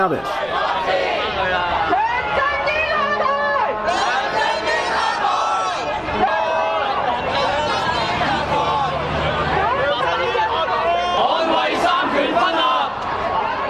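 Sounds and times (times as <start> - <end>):
speech: 0.0 - 1.7
thousands of street protesters in Hong Kong shouting and chanting: 0.0 - 13.6.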